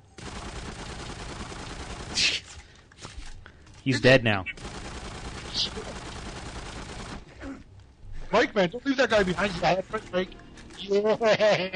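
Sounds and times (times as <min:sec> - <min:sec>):
gunfire in a video game: 0:00.0 - 0:03.2, 0:04.5 - 0:07.4
speech: 0:03.9 - 0:04.6, 0:08.4 - 0:11.7
laughter: 0:10.8 - 0:11.7.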